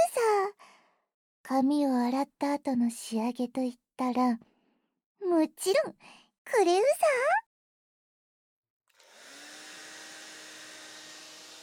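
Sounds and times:
speech: 1.5s - 4.5s, 5.2s - 7.4s
hair dryer blowing at full power: 9.0s - 11.6s.

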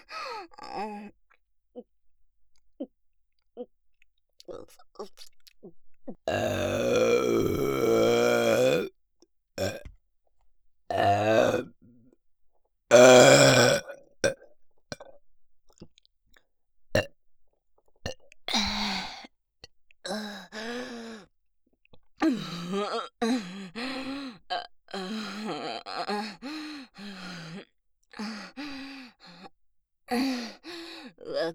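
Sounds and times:
breathy gasps: 0.0s - 0.8s, 22.2s - 29.5s, 30.1s - 31.3s
loud deliberate burping: 6.3s - 8.9s, 9.6s - 9.8s, 10.9s - 11.7s, 12.9s - 14.4s.

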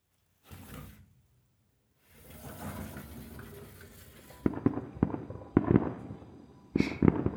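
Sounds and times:
distant fireworks booming and crackling: 4.3s - 7.3s.

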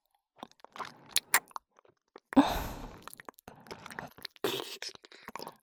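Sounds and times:
wet mouth sounds of ear licking in ASMR: 0.4s - 5.6s
voiced sigh: 2.4s - 3.0s.

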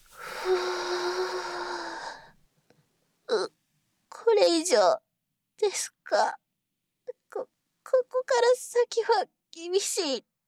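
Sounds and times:
deep breathing during a forward stretch: 0.0s - 2.4s
speech: 4.7s - 5.0s, 5.6s - 6.4s, 7.3s - 10.3s.

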